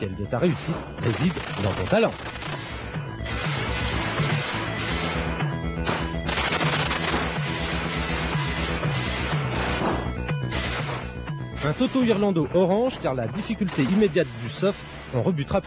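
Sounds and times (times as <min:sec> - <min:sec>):
speech: 0:00.0 - 0:02.6, 0:11.6 - 0:15.6
repeating low pulsing game backing music: 0:00.0 - 0:15.6
crashing blasts in a video game: 0:00.6 - 0:12.1
machine gun fire in a robot-themed side-scrolling shooter on PC Engine: 0:01.1 - 0:09.9.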